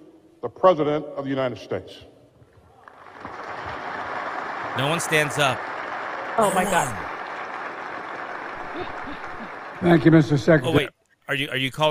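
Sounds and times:
speech: 0:00.4 - 0:02.1, 0:04.8 - 0:05.7, 0:06.4 - 0:07.1, 0:08.8 - 0:09.2, 0:09.8 - 0:11.8
sparse polite golf-clap applause from an audience: 0:02.6 - 0:10.8.

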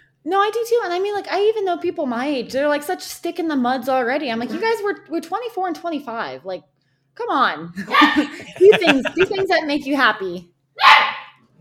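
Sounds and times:
speech: 0:00.2 - 0:11.6
laughter: 0:07.8 - 0:09.9
blue merle Australian Shepherd puppy barking: 0:07.9 - 0:08.4, 0:10.8 - 0:11.4.

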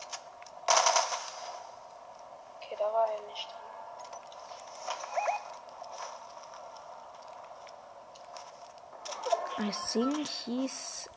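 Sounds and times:
gunfire in a video game: 0:00.7 - 0:01.5
speech: 0:03.0 - 0:03.7, 0:09.6 - 0:11.1.

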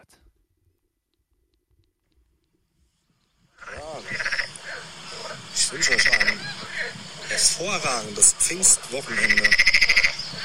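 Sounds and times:
chorus of frogs croaking in a park: 0:03.2 - 0:10.4
speech: 0:05.7 - 0:10.4.

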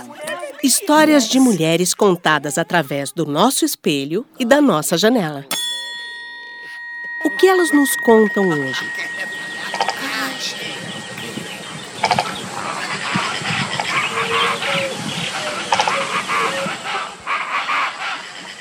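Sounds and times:
speech: 0:00.0 - 0:05.6, 0:07.2 - 0:09.3
jabiru stork croaking calls: 0:06.5 - 0:18.6
dense outdoor bird chorus: 0:08.0 - 0:18.6.

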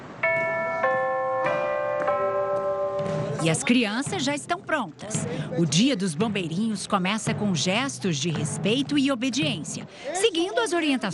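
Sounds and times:
fire station bell ringing at a fire brigade barracks in Brazil: 0:00.2 - 0:04.4
speech: 0:03.4 - 0:11.1.

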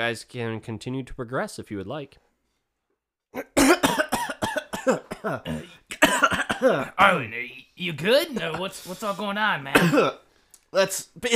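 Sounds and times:
speech: 0:00.0 - 0:02.2, 0:04.8 - 0:11.3
raspy coughing after inhaling fumes: 0:03.4 - 0:07.1, 0:09.7 - 0:10.2.

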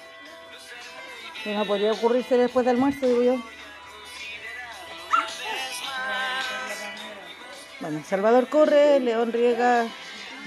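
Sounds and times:
speech: 0:01.4 - 0:03.6, 0:07.9 - 0:10.4
dog barking: 0:05.1 - 0:05.5
dogs yipping and whimpering: 0:05.1 - 0:05.8.

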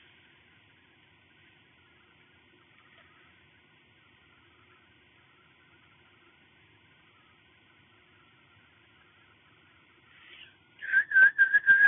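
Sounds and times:
person practicing whistling: 0:10.8 - 0:11.8.

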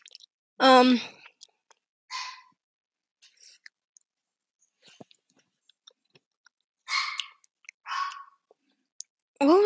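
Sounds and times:
speech: 0:00.8 - 0:01.2, 0:09.4 - 0:09.6
dog barking: 0:02.1 - 0:02.5, 0:06.8 - 0:08.4.

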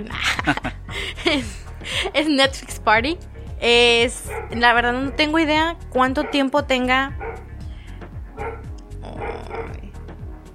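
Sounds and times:
laughter: 0:00.0 - 0:02.2
speech: 0:00.0 - 0:07.2
dog yipping: 0:04.2 - 0:06.6, 0:07.2 - 0:07.5, 0:08.4 - 0:09.8
dog barking: 0:04.2 - 0:07.5, 0:08.3 - 0:09.9.

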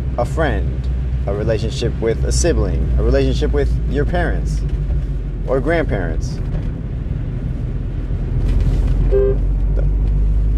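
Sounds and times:
car rumbling through road traffic: 0:00.0 - 0:10.5
speech: 0:00.2 - 0:04.8, 0:05.5 - 0:06.6
short car horn toot: 0:09.1 - 0:09.4.

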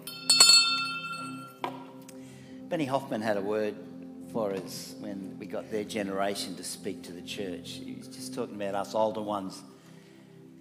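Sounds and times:
small bell ringing: 0:00.0 - 0:01.6
speech: 0:02.7 - 0:09.8.

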